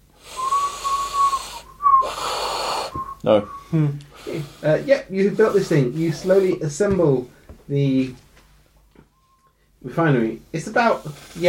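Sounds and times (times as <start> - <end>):
rough burst of breath: 0.1 - 4.8
person whistling while breathing in: 0.2 - 4.7
speech: 3.2 - 8.2, 9.8 - 11.4.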